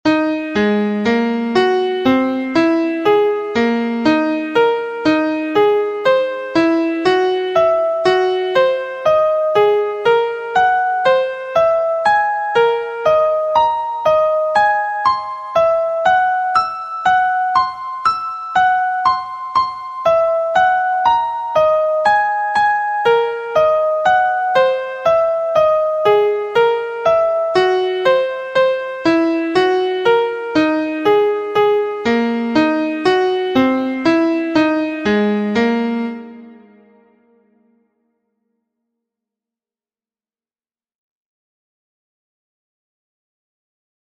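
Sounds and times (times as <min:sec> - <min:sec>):
scale notes in A-flat: 0:00.1 - 0:37.1.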